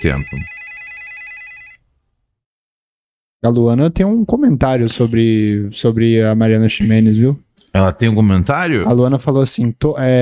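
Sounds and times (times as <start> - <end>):
speech: 0.0 - 0.6, 3.4 - 10.2
telephone ringing with electronic trill: 0.0 - 1.8.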